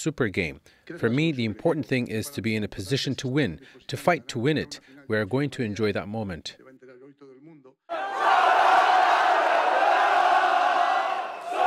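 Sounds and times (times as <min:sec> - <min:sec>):
speech: 0:00.0 - 0:06.7
large crowd of football fans roaring and chanting outdoors: 0:07.9 - 0:11.6.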